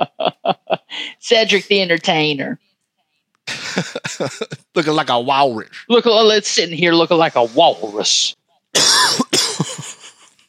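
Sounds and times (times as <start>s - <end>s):
laughter: 0.0s - 1.1s, 3.5s - 5.2s, 9.4s - 10.4s
speech: 1.2s - 2.7s, 3.8s - 9.2s
smoker's harsh hacking coughs: 3.5s - 4.8s, 8.8s - 10.0s.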